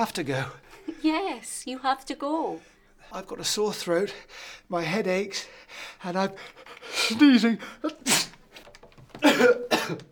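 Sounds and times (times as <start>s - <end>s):
speech: 0.0s - 8.3s, 9.2s - 10.1s
person coughing raspily: 9.2s - 10.1s.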